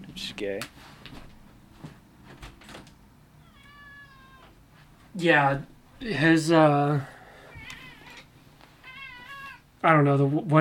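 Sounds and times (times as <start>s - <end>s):
faint hum: 0.0s - 10.5s
speech: 0.2s - 1.2s, 5.2s - 7.2s, 9.8s - 10.5s
cat meowing: 3.4s - 4.6s, 7.4s - 9.7s.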